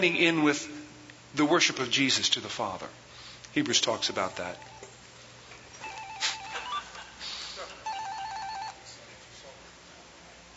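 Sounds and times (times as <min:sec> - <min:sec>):
speech: 0:00.0 - 0:04.8
hum of a large room: 0:00.0 - 0:10.5
cell phone warbling electronic ringtone: 0:04.1 - 0:04.9, 0:05.8 - 0:07.2, 0:07.8 - 0:08.9.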